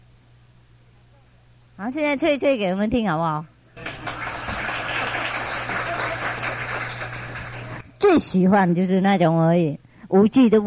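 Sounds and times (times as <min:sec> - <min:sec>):
faint low hum: 0:00.0 - 0:10.6
speech: 0:01.8 - 0:03.5, 0:08.1 - 0:10.6
crowd clapping: 0:03.8 - 0:07.8.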